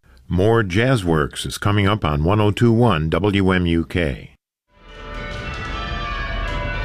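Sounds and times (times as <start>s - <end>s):
speech: 0.3s - 4.3s
college bell tower bells ringing: 4.7s - 6.8s.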